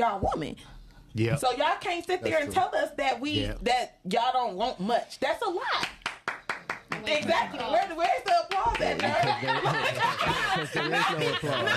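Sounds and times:
speech: 0.0s - 6.0s, 7.0s - 11.7s
slow hand clapping: 5.8s - 9.5s
people laughing: 8.7s - 11.7s.

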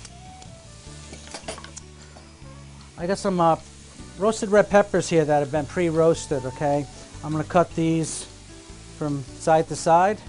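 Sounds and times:
shrimp sizzling in a frying pan: 0.0s - 10.2s
speech: 3.0s - 8.3s, 9.0s - 10.2s.

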